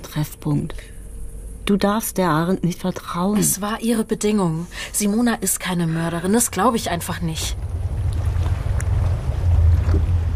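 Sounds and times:
speech: 0:00.2 - 0:01.0, 0:01.7 - 0:07.7
faint lapping water at a flooded old harbor: 0:06.8 - 0:10.3
wind buffeting the microphone at a flooded old harbor: 0:06.9 - 0:10.3.

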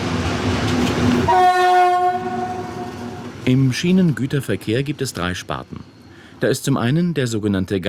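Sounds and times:
Class 298 diesel locomotive rumbling: 0:00.0 - 0:07.8
Class 298 diesel locomotive loud sustained horn blast of stacked steady tones: 0:01.2 - 0:03.3
speech: 0:03.5 - 0:07.8.

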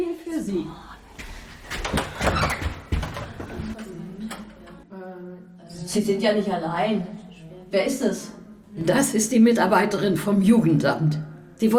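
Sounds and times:
speech: 0:00.4 - 0:01.3, 0:05.9 - 0:11.7
door opening with a rattling slide and clunks: 0:00.7 - 0:04.9.

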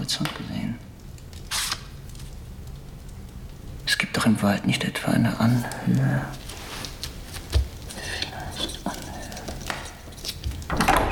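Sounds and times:
speech: 0:00.1 - 0:00.4, 0:04.3 - 0:06.4
shuffling: 0:05.4 - 0:10.7
door opening with a low thump and creak: 0:09.4 - 0:11.1.

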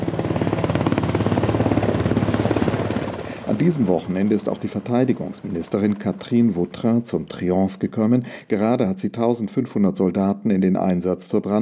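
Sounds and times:
military helicopter rotor blades thudding: 0:00.0 - 0:07.0
speech: 0:03.6 - 0:11.6.

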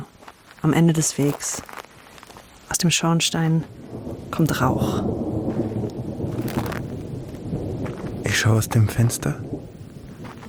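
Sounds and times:
rain hissing: 0:00.0 - 0:10.4
speech: 0:00.6 - 0:01.8, 0:02.8 - 0:05.2, 0:08.4 - 0:09.5
low rumble: 0:03.7 - 0:10.4.

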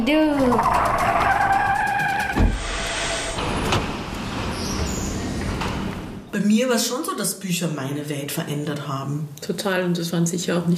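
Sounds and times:
speech: 0:00.0 - 0:00.9, 0:06.5 - 0:10.7
rumbling road noise: 0:00.3 - 0:06.3
racing car skidding: 0:00.5 - 0:03.3.

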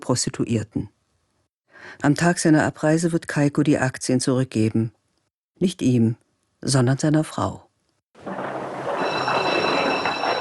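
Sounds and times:
speech: 0:00.0 - 0:01.0, 0:01.8 - 0:05.0, 0:05.6 - 0:07.6
train rumbling at a station: 0:08.2 - 0:10.3.

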